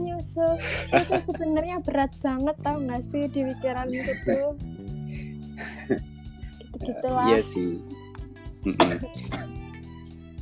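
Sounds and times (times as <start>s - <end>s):
speech: 0.2s - 5.2s, 5.9s - 6.1s, 6.8s - 8.0s, 8.6s - 9.6s
laughter: 0.6s - 1.8s, 3.9s - 4.5s, 5.6s - 6.0s, 8.7s - 9.4s
person coughing: 0.7s - 1.3s, 8.7s - 9.6s.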